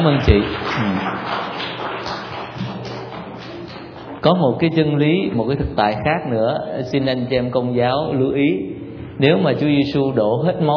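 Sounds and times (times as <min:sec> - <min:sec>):
speech: 0:00.0 - 0:01.4, 0:04.2 - 0:10.7
crowd clapping: 0:00.0 - 0:04.8.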